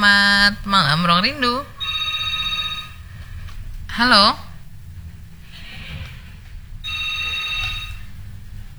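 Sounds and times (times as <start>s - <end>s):
speech: 0.0s - 1.7s, 4.0s - 4.4s
steady electronic telephone tone after a call disconnects: 0.0s - 4.1s, 6.8s - 8.7s
low hum: 0.0s - 8.7s.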